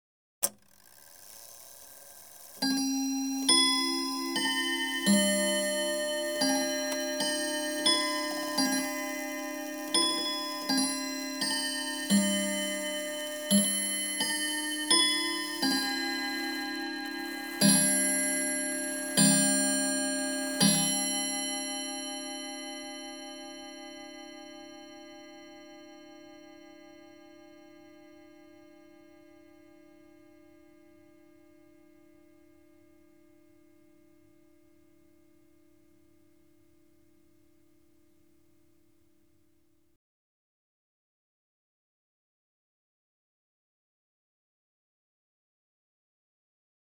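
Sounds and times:
domestic chiming clock striking three o'clock: 1.2 - 36.8.

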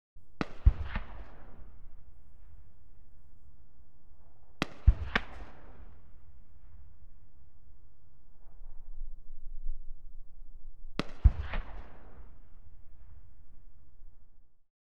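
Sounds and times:
shots fired: 0.4 - 1.9, 11.0 - 12.2.

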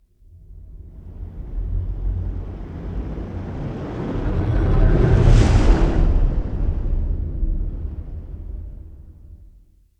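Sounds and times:
sci-fi whoosh of a big ship passing by: 1.5 - 9.5.

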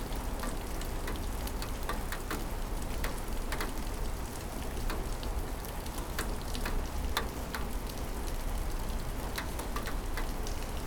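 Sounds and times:
rain on a window: 0.0 - 10.8.

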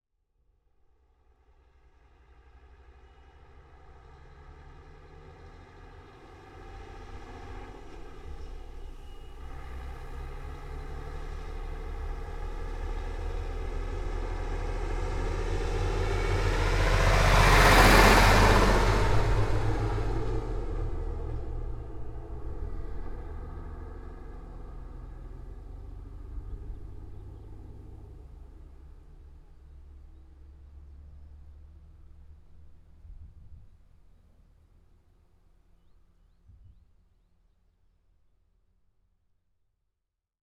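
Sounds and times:
Ural 4320 diesel truck driving by close: 2.6 - 33.0.

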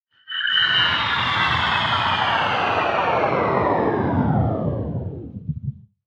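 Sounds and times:
sci-fi engine shutting off: 0.5 - 5.8.

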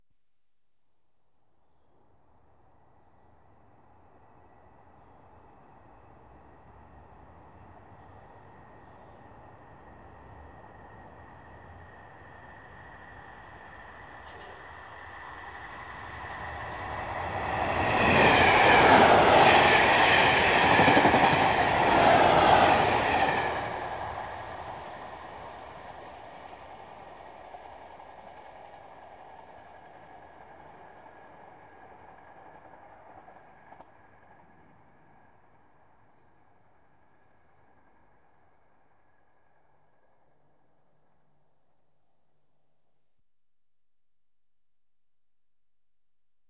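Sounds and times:
electric commuter trains passing: 4.6 - 33.8.

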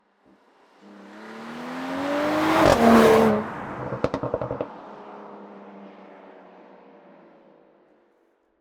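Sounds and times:
Mercedes E53 AMG car passing by: 0.7 - 6.9.

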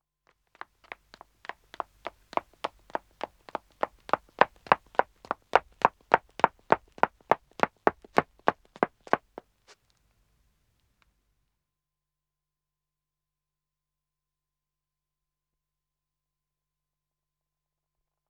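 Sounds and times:
woman running footsteps on dead-acoustic wood: 0.5 - 9.5.

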